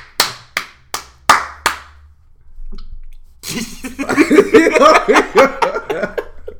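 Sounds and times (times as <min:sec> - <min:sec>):
hand claps: 0:00.0 - 0:02.1
laughter and chuckling: 0:03.5 - 0:06.5.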